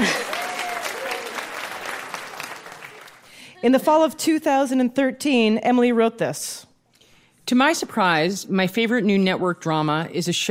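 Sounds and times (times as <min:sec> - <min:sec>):
hands clapping in applause: 0:00.0 - 0:03.3
speech: 0:03.6 - 0:06.7, 0:07.5 - 0:10.4.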